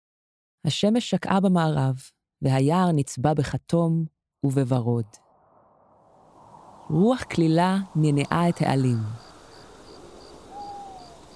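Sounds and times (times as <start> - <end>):
speech: 0.6 - 5.2, 6.9 - 9.3
crickets chirping at night: 5.8 - 11.3
owl hooting at night: 7.8 - 11.3.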